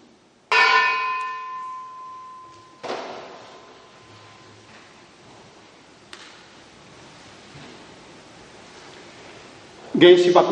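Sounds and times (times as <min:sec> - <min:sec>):
church bell that survived the atomic bombing struck in prayer for peace: 0:00.5 - 0:04.5
speech: 0:10.0 - 0:10.5.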